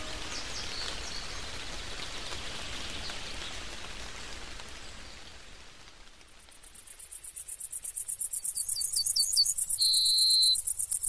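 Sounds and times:
steady rain pattering over an open wild meadow: 0.0 - 11.0
dense pulsing chorus of crickets chirping rhythmically: 6.5 - 11.0.

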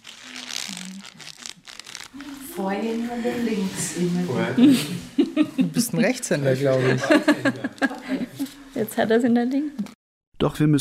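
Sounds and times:
sheet of paper crinkled and crumpled by a child: 0.0 - 3.2, 7.6 - 8.6
speech: 2.6 - 7.9, 9.0 - 9.8, 10.4 - 10.7
laughter: 4.4 - 8.6.

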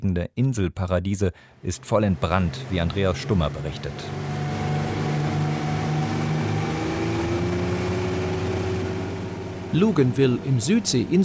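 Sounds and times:
speech: 0.0 - 4.4, 9.7 - 11.2
boat engine droning on the sea off Luganville Vanuatu: 1.4 - 11.2.

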